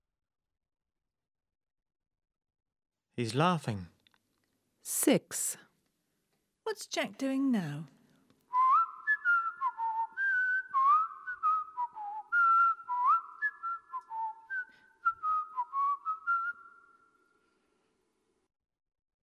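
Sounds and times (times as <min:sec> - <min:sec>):
speech: 0:03.2 - 0:03.9, 0:04.8 - 0:05.6, 0:06.7 - 0:08.0
person whistling a lively tune: 0:08.5 - 0:17.2.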